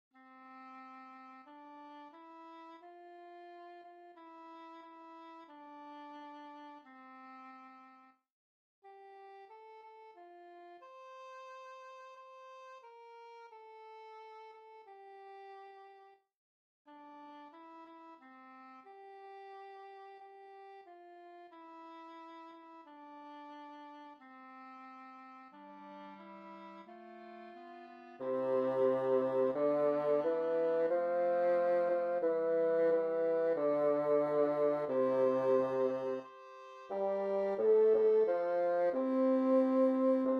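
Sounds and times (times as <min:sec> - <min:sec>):
MIDI music: 0:25.6 - 0:40.3.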